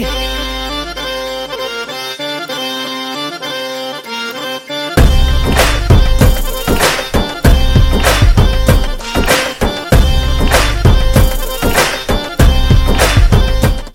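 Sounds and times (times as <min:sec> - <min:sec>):
background violin tone: 0:00.0 - 0:13.9.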